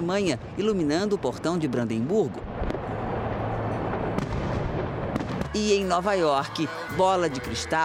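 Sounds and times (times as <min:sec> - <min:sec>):
speech: 0:00.0 - 0:02.5, 0:05.5 - 0:07.8
rumbling wash of explosions: 0:02.4 - 0:05.6
fireworks bursting over New Year celebration: 0:03.9 - 0:05.7.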